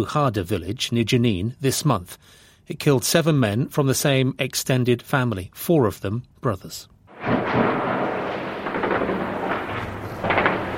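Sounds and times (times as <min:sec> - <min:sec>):
speech: 0:00.0 - 0:07.9
intense gunfire bursts echoing: 0:07.1 - 0:10.7.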